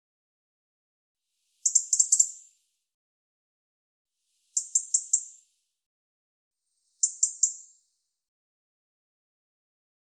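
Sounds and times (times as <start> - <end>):
European robin calling: 1.6 - 2.5, 4.6 - 5.4, 7.0 - 7.8.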